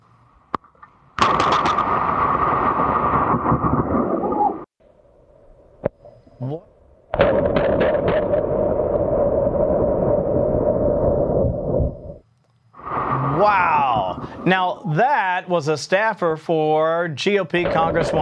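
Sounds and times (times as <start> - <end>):
thunder crack from a lightning strike: 1.2 - 4.7, 7.1 - 12.2, 12.8 - 14.8
speech: 6.4 - 6.7, 14.9 - 18.1.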